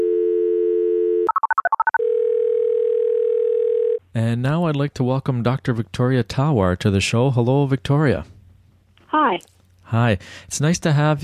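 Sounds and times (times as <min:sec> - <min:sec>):
telephone dial tone: 0:00.0 - 0:04.0
speech: 0:04.2 - 0:08.3, 0:09.2 - 0:11.2.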